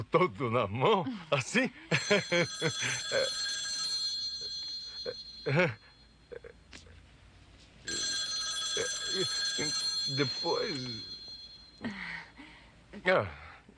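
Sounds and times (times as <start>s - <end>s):
speech: 0.0s - 3.5s, 5.0s - 5.8s, 9.2s - 11.1s, 11.8s - 12.1s, 13.0s - 13.4s
telephone bell ringing in a dubbed film scene: 1.9s - 6.2s, 7.9s - 12.3s.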